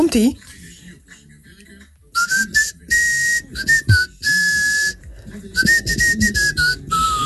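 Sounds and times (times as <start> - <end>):
speech: 0.0 - 0.6
person whistling a bright piercing melody: 2.2 - 7.2.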